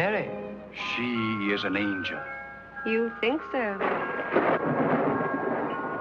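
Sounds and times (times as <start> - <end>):
speech: 0.2 - 4.9
rumble of thunder from a storm: 3.8 - 5.9.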